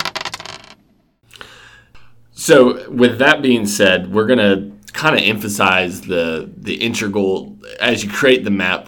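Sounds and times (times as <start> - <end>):
dice clattering across a hard tabletop: 0.0 - 0.8
speech: 2.4 - 8.8.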